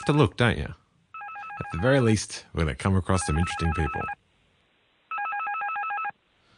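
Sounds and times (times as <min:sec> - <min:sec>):
speech: 0:00.0 - 0:00.8, 0:01.6 - 0:04.2
loud electronic telephone ringtone with warbling trill: 0:01.2 - 0:02.0, 0:03.2 - 0:04.2, 0:05.1 - 0:06.2.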